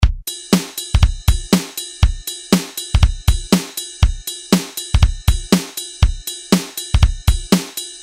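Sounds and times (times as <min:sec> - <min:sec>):
funk beat from a Roland R-8 drum machine: 0:00.0 - 0:08.0.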